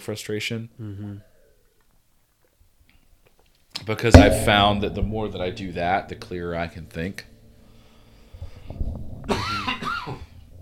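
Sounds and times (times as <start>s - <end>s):
speech: 0.0s - 1.3s, 3.9s - 7.3s
faint low rumble: 4.2s - 6.3s
person coughing: 9.3s - 10.3s.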